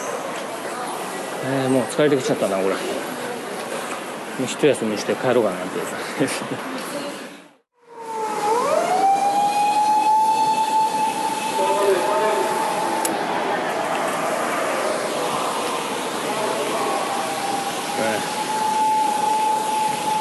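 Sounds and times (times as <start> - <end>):
street noise rumble: 0.0 - 20.1
speech: 1.4 - 3.2, 4.4 - 7.2
police car siren wailing: 7.8 - 20.1.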